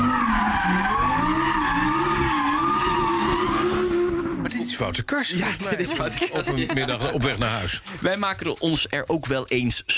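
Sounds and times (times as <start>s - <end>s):
car tires squealing while accelerating: 0.0s - 4.9s
speech: 4.8s - 9.9s
laughter: 5.4s - 8.0s.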